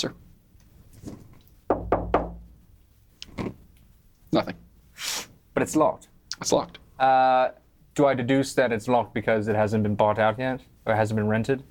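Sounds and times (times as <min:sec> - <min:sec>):
speech: 0:00.0 - 0:00.2, 0:04.3 - 0:04.6, 0:05.6 - 0:11.7
faint rustling: 0:00.8 - 0:01.6
knocking on a wooden door: 0:01.7 - 0:02.5.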